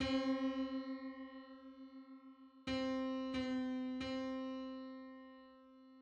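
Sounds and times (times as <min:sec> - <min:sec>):
525th harmonic tone on C: 0:00.0 - 0:04.0.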